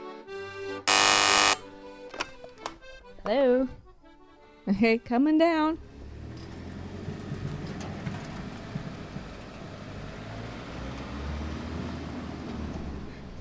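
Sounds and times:
speech: 3.2s - 3.8s, 4.7s - 5.9s
faint clatter of street noise: 5.4s - 13.4s
garbage truck rumbling past with low engine drone: 5.6s - 13.4s.

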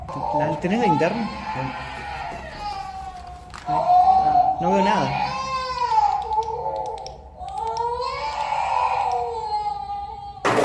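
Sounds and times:
child crying in an abandoned sanatorium: 0.1s - 10.5s
speech: 0.4s - 2.1s, 3.7s - 4.0s, 4.6s - 5.3s
faint clicks: 6.1s - 7.9s.

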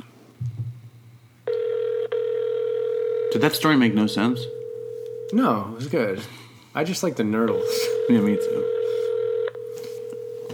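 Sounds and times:
phone ringing with steady electronic tone for incoming call: 1.5s - 6.1s, 7.4s - 10.5s
speech: 3.3s - 4.6s, 5.3s - 8.8s.

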